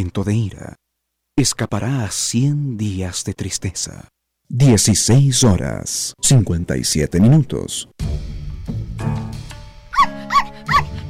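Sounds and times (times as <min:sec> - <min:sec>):
speech: 0:00.0 - 0:00.8, 0:01.4 - 0:08.3
dog barking: 0:09.9 - 0:11.0.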